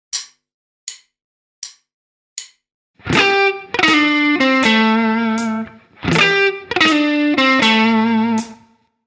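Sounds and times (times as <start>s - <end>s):
blues guitar tricks: 3.0s - 8.7s.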